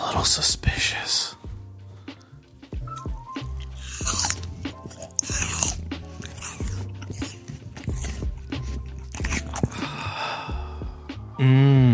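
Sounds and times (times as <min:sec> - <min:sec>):
speech: 0:00.2 - 0:01.3, 0:11.4 - 0:11.7
wet chewing and mouth sounds: 0:02.1 - 0:10.8
crunchy biting of an apple: 0:02.9 - 0:10.2.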